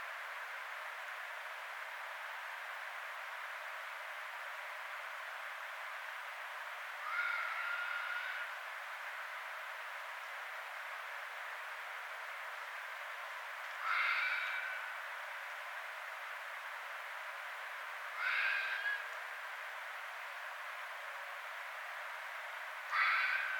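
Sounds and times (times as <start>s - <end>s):
steady background hiss: 0.0s - 23.5s
red fox harsh rasping calls: 7.0s - 8.5s, 13.8s - 14.9s, 18.2s - 19.0s, 22.9s - 23.5s.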